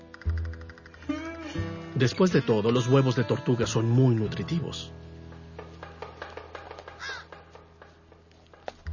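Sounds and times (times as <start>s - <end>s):
speech: 2.0s - 5.1s
hungry crow cawing by a roadside embankment: 6.8s - 7.4s.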